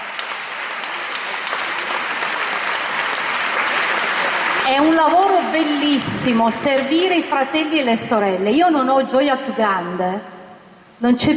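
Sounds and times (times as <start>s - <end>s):
sustained applause from a large audience: 0.0s - 6.0s
speech: 4.7s - 10.3s, 11.0s - 11.3s.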